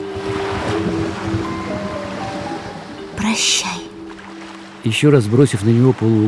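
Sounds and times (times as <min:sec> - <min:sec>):
faint musical tone: 0:00.0 - 0:06.2
ocean waves splashing: 0:00.0 - 0:06.2
speech: 0:03.3 - 0:03.9, 0:04.8 - 0:06.2.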